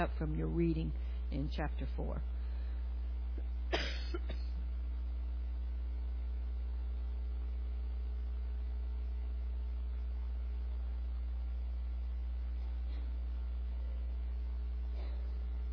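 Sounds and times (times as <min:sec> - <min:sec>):
speech: 0:00.0 - 0:02.3
steady low electrical hum: 0:00.0 - 0:15.7
person coughing in a room: 0:03.7 - 0:04.6.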